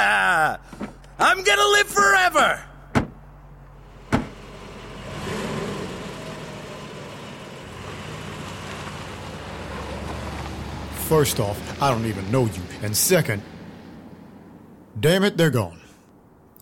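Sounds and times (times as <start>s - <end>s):
speech: 0.5s - 2.7s, 11.1s - 13.5s, 15.0s - 15.8s
car door thudding shut: 2.9s - 3.2s, 4.1s - 4.4s
car engine starting, revving and pulling away: 3.5s - 15.0s.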